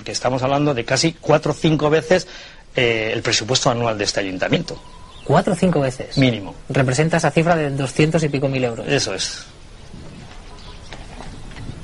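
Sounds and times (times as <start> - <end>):
speech: 0.0 - 9.6
steady broadband noise: 0.0 - 11.8
hooves of a horse led by a boy clopping: 9.9 - 11.8.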